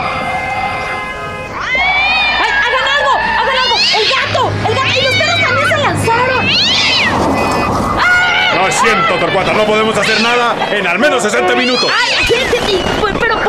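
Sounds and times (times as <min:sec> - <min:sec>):
steady low hum: 0:00.0 - 0:08.5
cat meowing and yowling: 0:03.5 - 0:10.4, 0:11.4 - 0:12.6
speech: 0:08.8 - 0:13.4.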